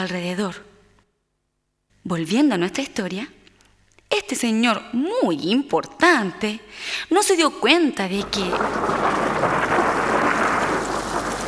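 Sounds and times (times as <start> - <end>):
speech: 0.0 - 0.7, 2.0 - 3.4, 4.1 - 9.4
steady rain: 8.2 - 11.4.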